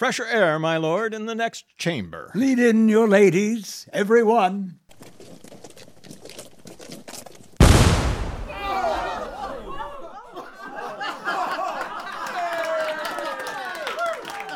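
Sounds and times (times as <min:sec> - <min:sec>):
speech: 0:00.0 - 0:05.1
cannon blast: 0:07.6 - 0:09.4
crowd of voices in excited chatter and cries: 0:08.5 - 0:10.2
laughter: 0:08.5 - 0:14.5.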